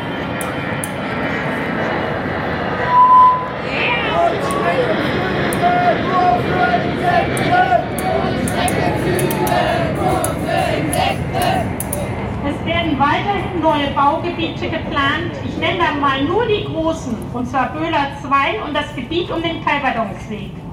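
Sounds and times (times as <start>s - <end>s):
faint murmuring voices: 0.0s - 16.3s
airplane passing overhead: 0.0s - 20.7s
speech: 14.1s - 20.6s.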